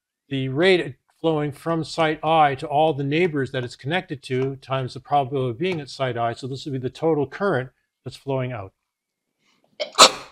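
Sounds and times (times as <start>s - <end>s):
speech: 0.3s - 8.8s, 9.8s - 10.1s
person sneezing: 9.8s - 10.3s.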